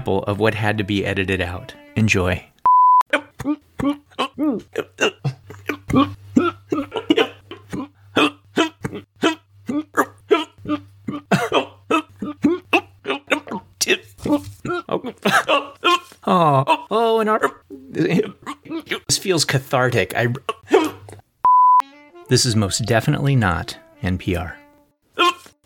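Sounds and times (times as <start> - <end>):
speech: 0.0 - 2.5, 3.4 - 7.0, 16.4 - 18.2, 19.2 - 20.6, 22.3 - 24.6
person hiccuping: 3.0 - 19.1, 20.4 - 21.2, 25.2 - 25.6.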